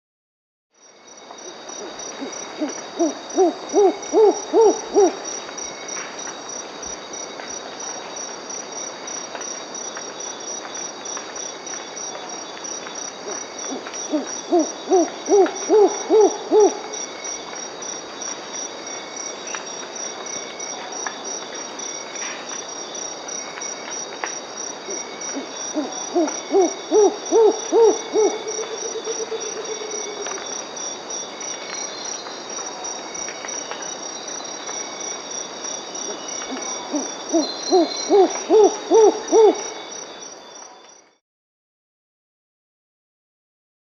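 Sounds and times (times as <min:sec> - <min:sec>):
Mottled Owl Ciccaba virgata calling in Peru: 0:02.2 - 0:05.3, 0:13.7 - 0:16.9, 0:25.3 - 0:30.3, 0:36.1 - 0:39.8.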